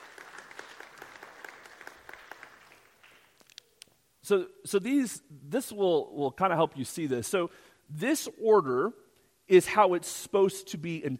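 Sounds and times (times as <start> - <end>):
audience applause: 0.0 - 3.3
speech: 4.3 - 11.1.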